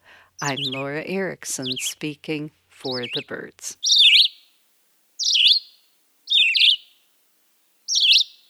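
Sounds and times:
speech: 0.4 - 4.0
red-eyed vireo singing whistled phrases: 3.8 - 4.4, 5.2 - 6.9, 7.9 - 8.4.

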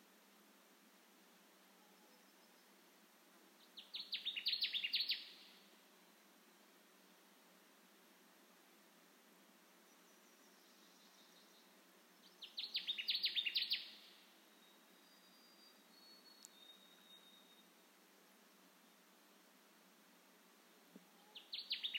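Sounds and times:
quiet background hiss: 0.0 - 21.9
Connecticut warbler song phrases: 10.2 - 17.7, 21.2 - 21.9.

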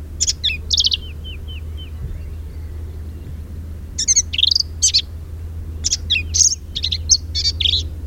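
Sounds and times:
black-capped vireo singing squeaky and buzzy phrases: 0.0 - 8.0.

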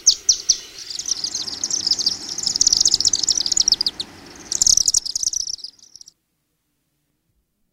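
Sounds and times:
Chimney Swifts chattering: 0.0 - 6.1.

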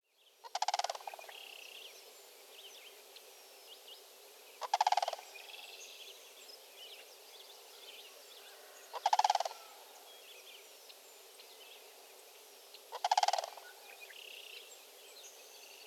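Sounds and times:
pair of sandhill cranes calling in a field: 0.4 - 1.5, 4.6 - 5.5, 8.5 - 10.0, 12.9 - 14.4.

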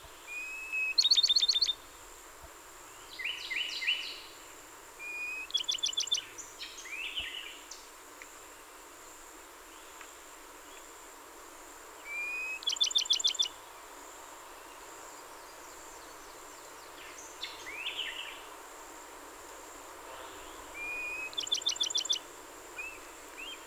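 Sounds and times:
hiss: 0.0 - 23.6
Bachman's sparrow song, pure rising whistle and bright trill: 5.1 - 6.2, 12.1 - 13.5, 20.8 - 23.6.

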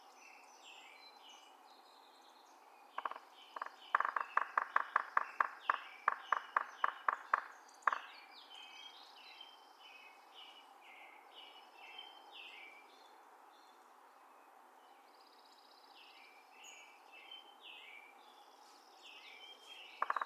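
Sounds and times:
Yellow-bellied Sapsucker drumming: 3.0 - 8.2, 20.0 - 20.2
Yellow-bellied Sapsucker calls: 3.0 - 9.5, 18.6 - 20.2.

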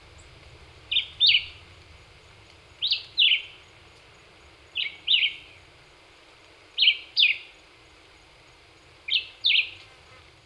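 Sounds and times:
light hiss: 0.0 - 10.4
black-whiskered vireo chirping: 0.1 - 6.0, 6.7 - 7.7.

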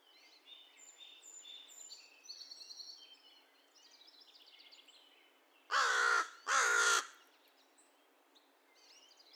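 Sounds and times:
American crow giving rough raspy caws: 5.7 - 7.2.

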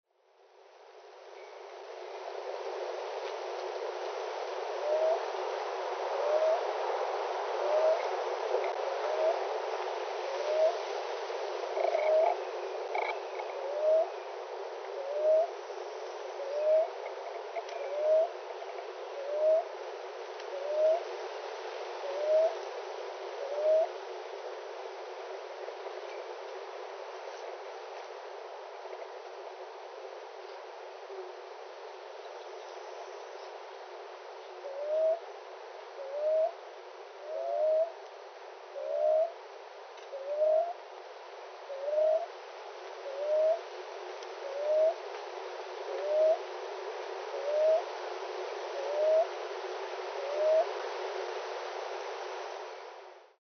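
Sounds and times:
wind: 0.0 - 53.4
Common Ground-Dove calling: 4.8 - 5.3, 6.2 - 6.7, 7.6 - 9.4, 10.3 - 10.8, 11.7 - 14.2, 14.9 - 15.6, 16.4 - 18.4, 22.1 - 22.6, 23.4 - 23.9, 34.6 - 35.2, 37.3 - 38.0, 38.8 - 39.4, 40.1 - 40.8, 41.7 - 42.3, 43.0 - 43.7, 44.4 - 45.0, 45.9 - 46.5, 47.3 - 47.9, 48.8 - 49.4, 50.2 - 50.7.

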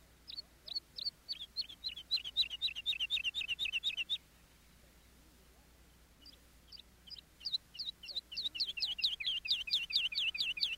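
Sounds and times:
skylark song: 0.0 - 4.2, 6.2 - 10.7.

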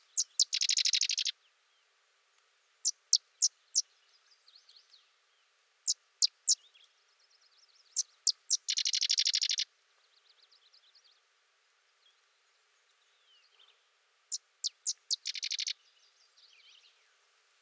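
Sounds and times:
sedge wren singing: 0.0 - 1.4, 7.9 - 9.7, 14.3 - 15.8.

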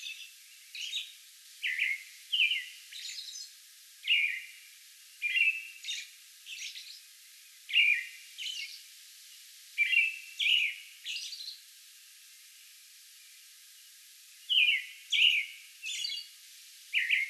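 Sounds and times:
American robin song: 0.0 - 4.5, 5.2 - 7.0, 7.7 - 8.8, 9.8 - 11.6, 14.5 - 17.2.

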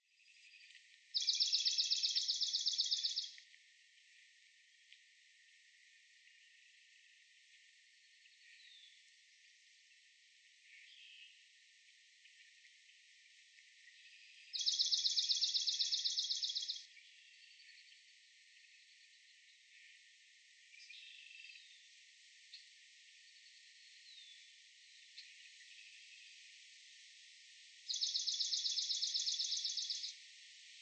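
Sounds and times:
swamp sparrow: 1.2 - 3.3, 14.5 - 16.8, 27.9 - 30.2.

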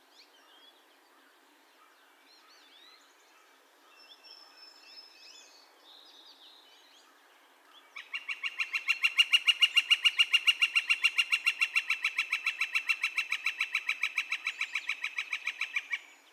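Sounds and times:
Northern flicker rattling call: 8.0 - 16.2.

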